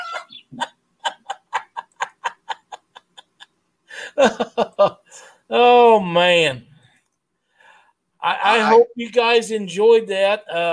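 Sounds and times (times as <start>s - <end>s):
short shrill squawks: 0.0s - 0.5s
laughter: 0.0s - 5.0s
speech: 4.2s - 6.7s, 8.2s - 10.7s.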